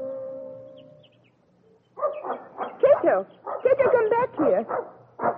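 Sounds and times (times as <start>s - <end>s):
dog barking and whimpering in a forest: 2.0s - 5.3s.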